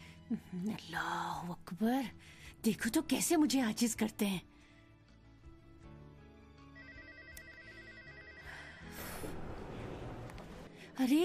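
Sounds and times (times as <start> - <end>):
speech: 0.3 - 4.6, 11.0 - 11.2
telephone electronic warbling ringtone: 6.7 - 8.9.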